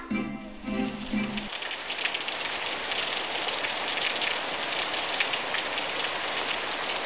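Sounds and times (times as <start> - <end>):
spring rain pattering on a surface: 1.2 - 7.0.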